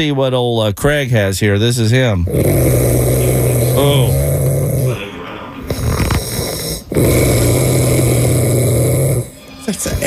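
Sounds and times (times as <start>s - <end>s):
speech: 0.0s - 4.2s
man snoring loudly: 2.2s - 9.5s.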